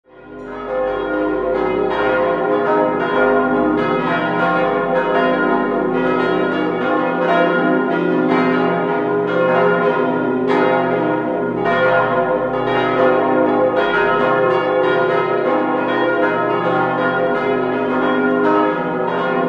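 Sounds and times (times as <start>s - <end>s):
bells in Bettbrunn: 0.1s - 19.4s.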